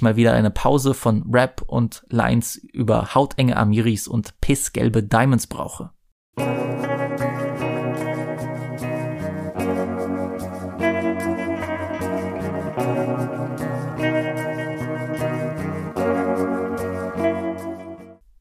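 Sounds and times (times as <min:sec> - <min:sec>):
speech: 0:00.0 - 0:06.6
shoegaze dream pop guitar music drenched in chorus, distortion and reverb: 0:06.4 - 0:18.2.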